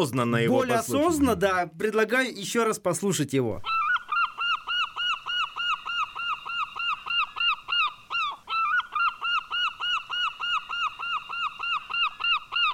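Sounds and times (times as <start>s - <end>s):
speech: 0.0s - 3.8s
herring gull's loud rapid laughing calls: 3.6s - 12.7s.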